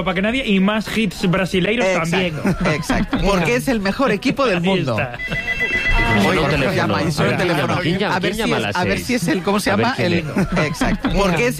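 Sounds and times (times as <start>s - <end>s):
speech: 0.0s - 11.5s
laughter: 2.0s - 11.5s
telephone ringing with a high electronic tone: 5.2s - 7.7s.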